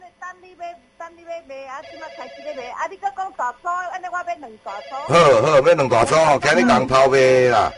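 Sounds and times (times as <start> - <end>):
speech: 1.1 - 7.7
telephone ringing with a melodic electronic tone: 1.8 - 2.7, 4.7 - 7.7.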